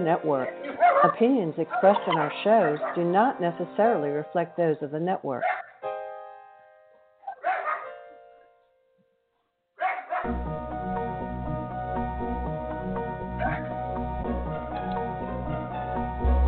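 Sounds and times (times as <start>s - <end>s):
speech: 0.0s - 5.6s
music: 0.0s - 9.4s, 10.1s - 16.4s
dog barking: 0.5s - 3.1s, 5.4s - 5.8s, 7.2s - 8.0s, 9.8s - 10.3s, 13.4s - 13.8s.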